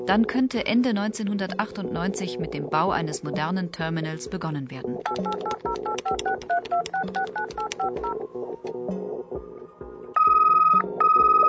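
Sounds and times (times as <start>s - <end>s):
speech: 0.0s - 8.3s
telephone keypad tones: 5.0s - 8.2s, 10.2s - 11.4s.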